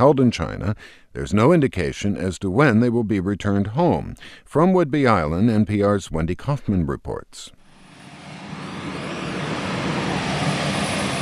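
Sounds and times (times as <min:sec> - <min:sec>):
speech: 0:00.0 - 0:07.6
airplane engine roaring at a naval air station on Whidbey Island: 0:07.6 - 0:11.2.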